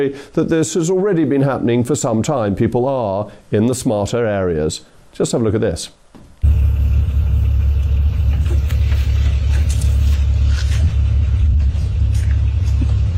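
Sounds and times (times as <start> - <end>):
speech: 0.0 - 6.0
car engine rumble driving along a country road: 6.4 - 13.1
road noise from a car on a country road: 6.4 - 13.1.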